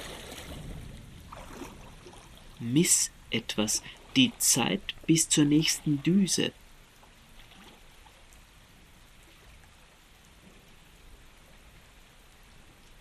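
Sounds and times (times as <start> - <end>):
low rumble: 0.0 - 4.2
steady dense rain falling: 0.0 - 12.9
speech: 2.6 - 6.6.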